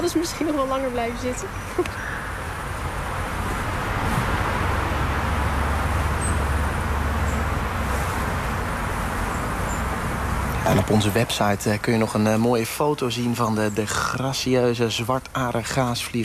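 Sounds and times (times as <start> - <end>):
speech: 0.0 - 2.2, 10.7 - 16.2
cars driving past across a parking lot: 0.0 - 16.2.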